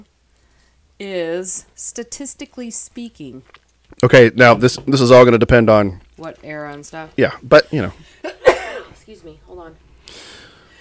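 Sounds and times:
quiet breathing: 0.2 - 1.0, 9.9 - 10.7
speech: 1.0 - 8.4, 9.1 - 10.3
person sneezing: 8.4 - 9.0.

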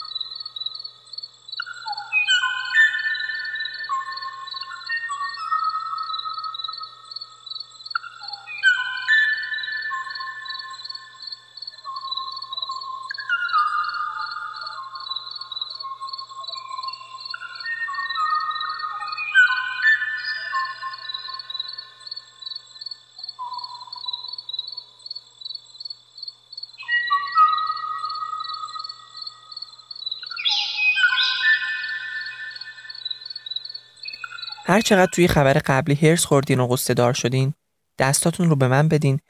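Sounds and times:
extinct bird singing whistled phrases: 1.6 - 6.1, 8.0 - 10.8, 16.5 - 21.5, 26.8 - 29.1, 30.2 - 33.3, 34.0 - 34.7
speech: 34.7 - 39.2.

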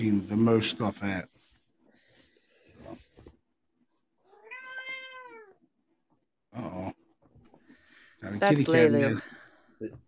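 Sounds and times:
speech: 0.0 - 1.4, 8.2 - 10.0
female pet cat meowing: 4.2 - 5.7.

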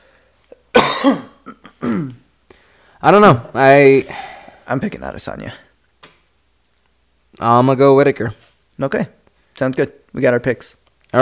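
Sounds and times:
person clearing a phlegmy throat: 0.7 - 2.3
person with a phlegmy throat coughing after drinking beer: 0.7 - 2.3
speech: 1.0 - 2.1, 3.0 - 5.6, 7.4 - 11.2.

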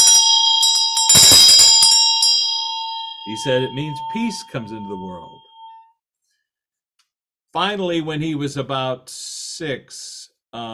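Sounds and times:
Tibetan bell ringing: 0.0 - 5.9
speech: 3.3 - 5.5, 7.6 - 10.7.

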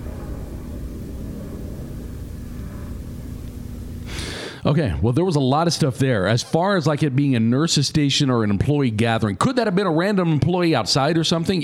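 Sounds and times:
helicopter or plane flying overhead near an airport: 0.0 - 4.6
speech: 4.6 - 11.6.

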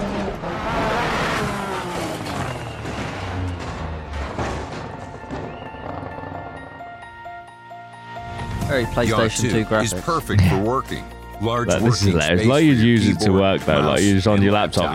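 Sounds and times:
rally car engine roaring and revving: 0.0 - 6.6
scraping crunching impacts of rally car sliding through corners: 1.8 - 6.7
gravel noise from rally car sliding hard through corners: 1.8 - 7.0
speech: 8.7 - 14.9.

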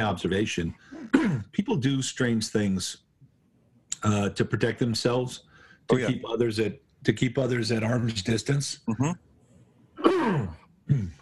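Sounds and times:
speech: 0.0 - 3.0, 4.0 - 9.3
throat clearing: 0.9 - 1.5, 10.0 - 11.2.

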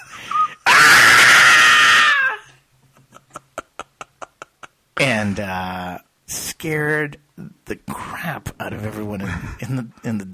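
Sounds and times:
person reenacting a high-pitched excited scream from a baseball game: 0.4 - 2.5
speech: 5.1 - 10.3.

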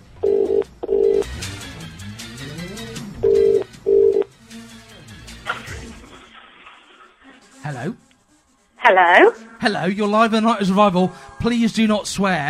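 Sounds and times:
telephone ringback tone on an outgoing call: 0.2 - 1.2, 3.2 - 4.3
speech: 8.9 - 12.4.

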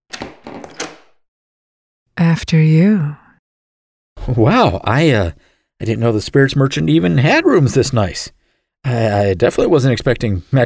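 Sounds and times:
door swinging open with a soft creak: 0.1 - 1.2
lock turning and latch releasing: 0.1 - 1.2
speech: 2.2 - 3.2, 4.2 - 10.6.

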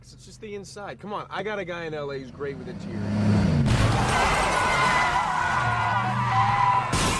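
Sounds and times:
car engine rumbling: 0.0 - 7.0
speech: 0.1 - 6.7
car tires screeching and skidding: 2.1 - 7.1
car smashing into side of another car: 3.6 - 5.4, 6.6 - 7.1.

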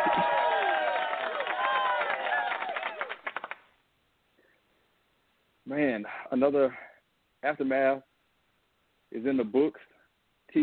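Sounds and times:
crowd cheering with whoops and shouts: 0.0 - 3.2
crowd clapping in an applause sound effect: 0.0 - 3.8
speech: 5.8 - 6.8, 7.4 - 8.1, 9.1 - 9.9.

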